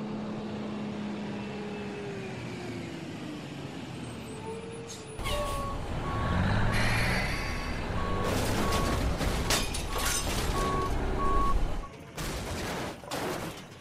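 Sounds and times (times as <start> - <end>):
truck engine droning as it approaches: 0.0 - 12.1
clattering impacts and crunching debris: 8.0 - 13.7.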